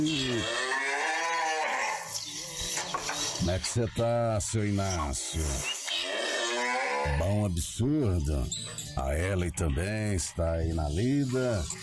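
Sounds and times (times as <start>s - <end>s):
speech: 0.0s - 0.6s, 3.5s - 5.8s, 7.0s - 11.8s
cattle mooing on a farm during milking in the Calvo region: 0.0s - 2.1s, 6.0s - 7.3s.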